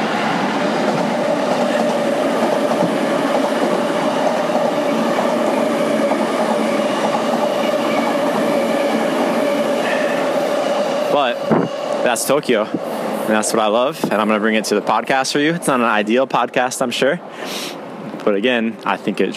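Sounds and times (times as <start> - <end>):
train passing close to a Tokyo station: 0.0 - 19.3
speech: 12.1 - 19.3.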